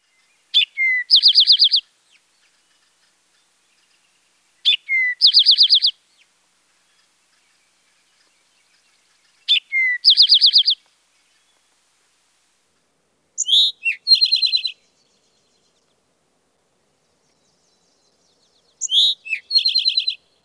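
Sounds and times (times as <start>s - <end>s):
eastern towhee calling: 0.5s - 1.9s, 4.6s - 6.0s, 9.5s - 10.8s, 13.4s - 14.8s, 18.8s - 20.2s.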